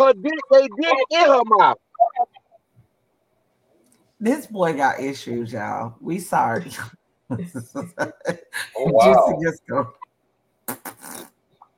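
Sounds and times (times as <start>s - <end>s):
speech: 0.1s - 1.8s, 4.2s - 10.0s
laughter: 6.7s - 9.5s
man farting with sputtering puffs and a raspy blast: 10.7s - 11.4s.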